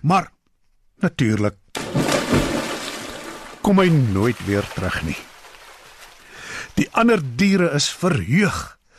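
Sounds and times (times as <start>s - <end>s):
speech: 0.0s - 0.4s, 1.0s - 1.6s, 3.6s - 5.3s, 6.8s - 8.8s
heavy splash of a lion leaping into a water well: 1.8s - 7.0s.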